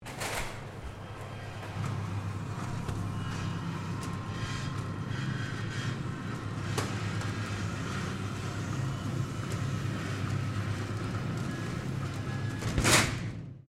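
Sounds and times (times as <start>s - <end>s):
small internal roller door of a small supermarket closing: 0.0s - 13.6s.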